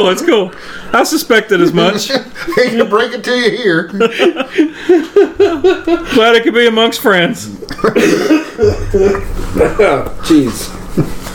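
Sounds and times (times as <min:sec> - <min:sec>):
speech: 0:00.0 - 0:11.2
laughter: 0:01.6 - 0:06.5, 0:07.5 - 0:11.3
harsh raspy coughing fit: 0:07.9 - 0:09.8.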